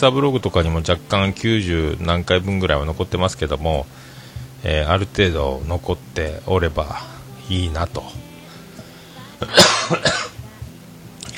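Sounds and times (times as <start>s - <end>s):
speech: 0.0s - 8.2s, 9.4s - 10.2s
faint trailing breath: 3.9s - 4.6s, 8.4s - 9.4s
harsh coughing: 9.4s - 10.4s.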